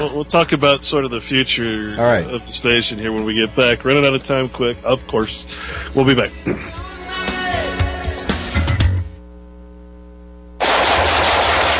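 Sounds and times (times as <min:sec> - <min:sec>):
speech: 0:00.0 - 0:06.8
steady hum: 0:00.0 - 0:11.7
automatic gunfire: 0:10.6 - 0:11.7
loud noisy hiss: 0:10.6 - 0:11.7.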